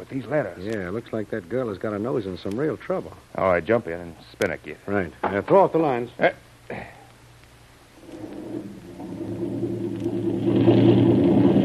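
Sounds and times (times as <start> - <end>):
speech: 0.1 - 7.0
boat engine revving as the boat pulls away: 8.3 - 11.6.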